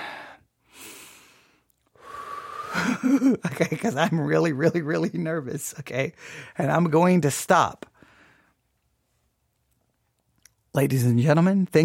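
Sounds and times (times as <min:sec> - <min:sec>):
person taking deep breaths: 0:00.0 - 0:03.1, 0:06.2 - 0:06.6, 0:08.0 - 0:08.6
speech: 0:03.0 - 0:07.9, 0:10.8 - 0:11.8.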